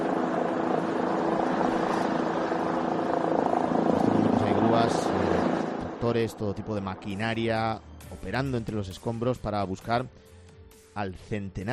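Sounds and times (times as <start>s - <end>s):
helicopter flying over the rubble of a collapsed building in Miami: 0.0s - 7.6s
speech: 6.1s - 10.3s, 11.0s - 11.7s.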